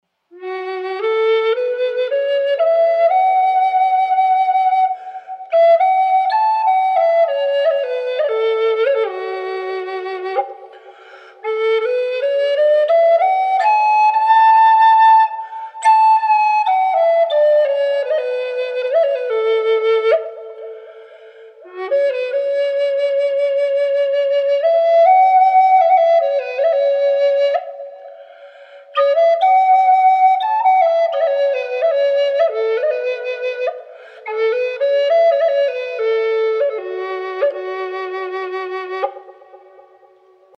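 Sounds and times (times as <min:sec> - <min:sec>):
wet spalted tamarind wood flutes playing in F-sharp minor: 0:00.1 - 0:40.5.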